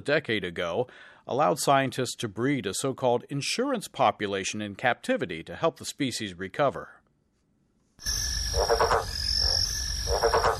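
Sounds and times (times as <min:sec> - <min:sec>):
speech: 0:00.0 - 0:07.0, 0:08.0 - 0:09.1
high insect-like buzzing: 0:08.0 - 0:10.5
yellow-spotted bell frog croaking: 0:08.0 - 0:10.5.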